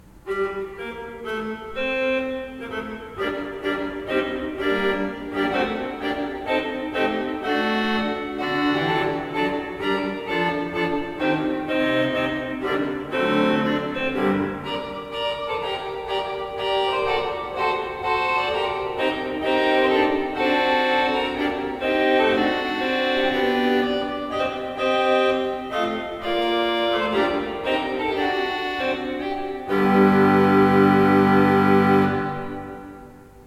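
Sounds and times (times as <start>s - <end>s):
pipe organ with two manuals and pedal: 0.1s - 33.4s.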